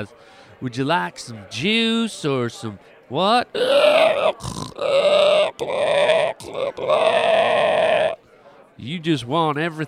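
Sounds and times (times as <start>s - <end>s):
speech: 0.0s - 8.2s, 8.8s - 9.8s
person imitating pig with nasal grunts: 3.5s - 8.2s.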